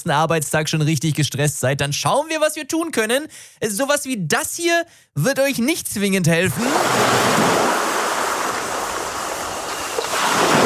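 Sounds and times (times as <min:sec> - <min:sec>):
speech: 0:00.0 - 0:07.8
ocean waves surf: 0:06.6 - 0:10.6.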